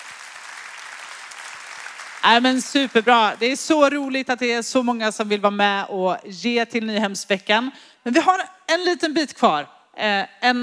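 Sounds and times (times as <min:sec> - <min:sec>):
audience applause at a conference: 0:00.0 - 0:03.3
speech: 0:02.2 - 0:10.6.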